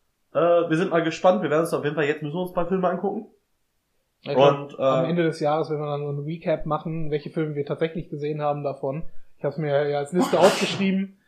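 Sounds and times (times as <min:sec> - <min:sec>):
speech: 0:00.4 - 0:03.4, 0:04.2 - 0:11.2
laughter: 0:04.4 - 0:05.1, 0:10.2 - 0:10.6
sneeze: 0:10.2 - 0:11.0.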